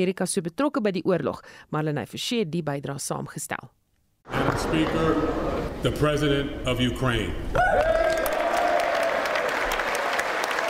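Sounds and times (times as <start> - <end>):
speech: 0.0 - 7.9
large audience applauding loudly: 7.6 - 10.6.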